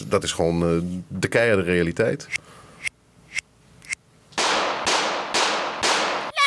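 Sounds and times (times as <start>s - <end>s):
speech: 0.1s - 2.6s
gunshots: 4.4s - 6.3s.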